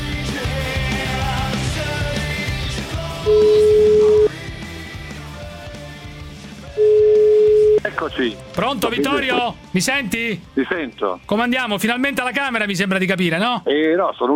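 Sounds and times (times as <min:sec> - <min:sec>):
music: 0:00.0 - 0:14.3
telephone ringback tone: 0:03.3 - 0:04.3, 0:06.8 - 0:07.8
speech: 0:08.0 - 0:14.3.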